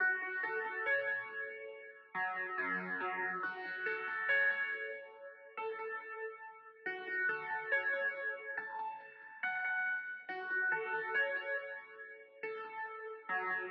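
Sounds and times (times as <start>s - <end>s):
music in F minor: 0.0s - 13.6s.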